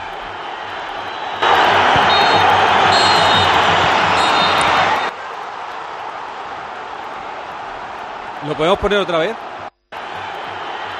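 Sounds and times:
stadium crowd roaring: 0.0s - 10.9s
referee whistles: 1.0s - 5.1s
speech: 8.6s - 9.5s.

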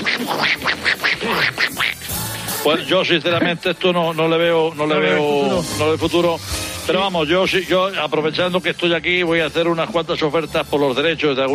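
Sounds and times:
person imitating duck quacks: 0.0s - 2.3s
speech: 0.2s - 1.6s, 2.6s - 11.5s.

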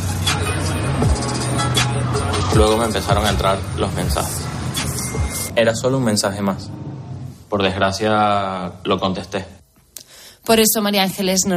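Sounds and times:
car low engine drone: 0.0s - 7.5s
car road rumble: 0.0s - 8.2s
speech: 2.6s - 4.5s, 5.6s - 6.8s, 7.5s - 9.6s, 10.4s - 11.5s.

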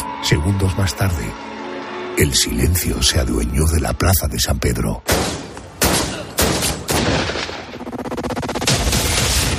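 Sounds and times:
speech: 0.2s - 1.5s, 2.2s - 5.4s
Browning 9 mm pistol gunshots fired in St. Peter's Square: 5.1s - 7.8s
quicker rattling series of shots: 5.1s - 9.5s.

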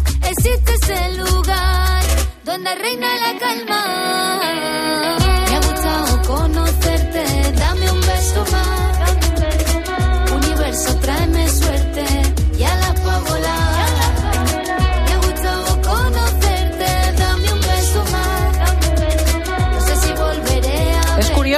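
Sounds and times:
full band song with bass, drums and sung vocal melody: 0.0s - 21.5s
speech: 0.4s - 1.7s, 2.4s - 5.4s, 6.2s - 13.8s.

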